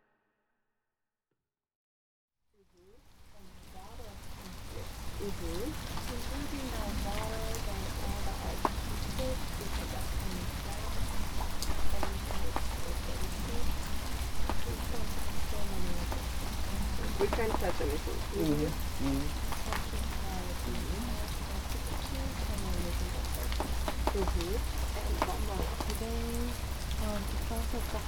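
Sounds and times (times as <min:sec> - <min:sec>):
rain falling on hard surfaces inside a concrete art museum: 0:02.6 - 0:28.0
faint indistinct voices murmuring: 0:03.4 - 0:28.0
speech: 0:05.2 - 0:07.2, 0:17.2 - 0:19.4, 0:26.0 - 0:28.0.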